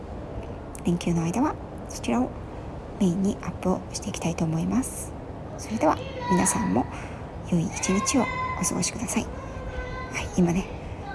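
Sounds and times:
speech: 0.8s - 2.4s, 3.0s - 9.4s, 10.1s - 10.8s
distant child calling out faintly: 5.6s - 11.1s.

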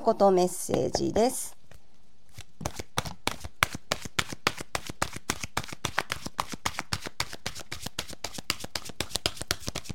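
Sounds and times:
speech: 0.0s - 1.6s
oracle cards being shuffled: 2.3s - 9.9s.

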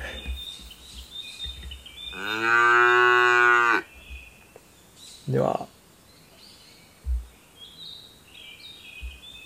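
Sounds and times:
faint birds chirping outdoors: 0.0s - 9.4s
cow mooing: 2.1s - 3.8s
speech: 5.3s - 5.7s.

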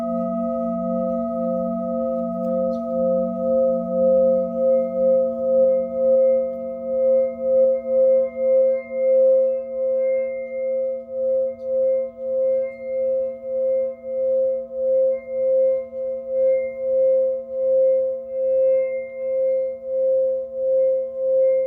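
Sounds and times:
Tibetan singing bowl ringing outdoors in greenery: 0.0s - 21.6s.

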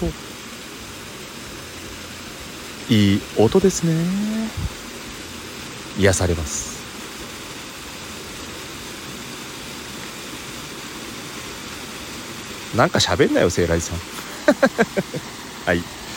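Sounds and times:
speech: 0.0s - 0.4s, 2.9s - 4.8s, 6.0s - 6.7s, 12.7s - 16.0s
roar of rushing water from a waterfall: 0.0s - 16.1s
laughter: 14.2s - 15.2s.

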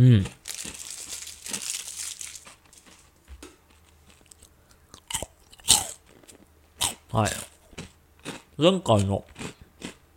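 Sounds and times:
speech: 0.0s - 0.6s, 7.1s - 7.5s, 8.6s - 9.3s
crunchy bites and chewing of a snack: 0.2s - 10.1s
plastic wrapper of an individually wrapped snack crinkling: 0.4s - 3.1s.

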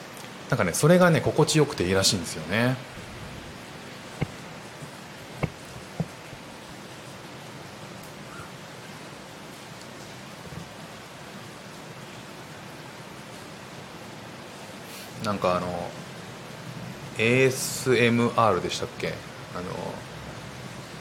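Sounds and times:
thunderstorm rain in Singapore: 0.0s - 20.9s
speech: 0.5s - 3.0s, 15.4s - 15.8s, 17.2s - 20.1s
sharp drips or taps: 4.1s - 6.4s.

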